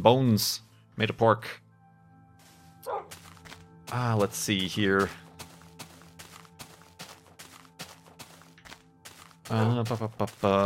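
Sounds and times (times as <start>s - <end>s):
speech: 0.0s - 1.6s, 3.9s - 5.2s, 9.5s - 10.6s
dog barking: 2.8s - 3.2s.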